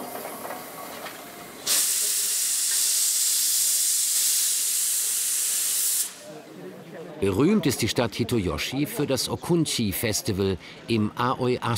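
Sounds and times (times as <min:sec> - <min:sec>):
steam locomotive rumbling: 0:00.0 - 0:01.7
steam locomotive hissing steam: 0:00.0 - 0:06.6
speech: 0:07.2 - 0:11.7.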